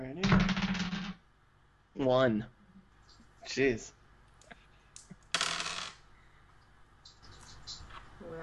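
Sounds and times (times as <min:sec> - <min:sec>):
dice rolling on a table: 0:00.3 - 0:01.2, 0:05.0 - 0:06.0
speech: 0:02.0 - 0:02.6, 0:03.4 - 0:04.0.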